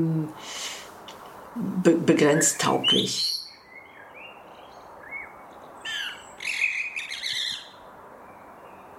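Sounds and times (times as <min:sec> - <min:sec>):
speech: 0:00.0 - 0:00.6, 0:01.6 - 0:03.4
hiss: 0:00.0 - 0:08.9
sparrows chirping in an open landscape: 0:01.2 - 0:08.9.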